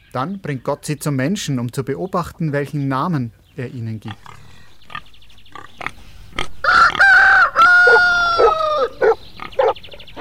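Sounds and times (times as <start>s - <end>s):
speech: 0.1s - 4.4s
chicken clucking and squawking: 5.5s - 10.1s
rooster crowing: 6.6s - 9.2s.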